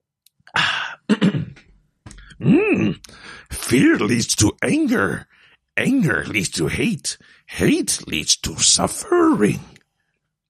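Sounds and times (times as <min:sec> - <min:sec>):
person clearing throat: 0:00.5 - 0:03.1
voiced groan-like hum: 0:02.3 - 0:03.1
speech: 0:02.4 - 0:09.8.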